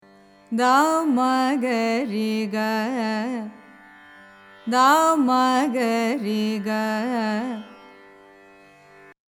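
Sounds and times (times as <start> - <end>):
Carnatic music in raga abhogi: 0.0 - 9.2.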